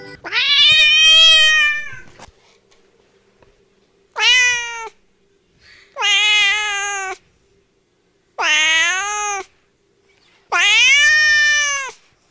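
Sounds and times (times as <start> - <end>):
cat yowling and caterwauling: 0.2 - 2.1, 4.2 - 4.9, 6.0 - 7.2, 8.4 - 9.5, 10.5 - 12.0.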